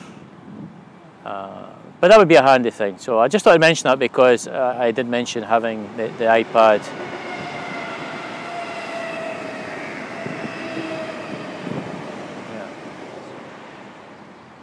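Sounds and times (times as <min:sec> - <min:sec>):
speech: 0:01.2 - 0:07.1
passing train rumbling: 0:04.4 - 0:14.6.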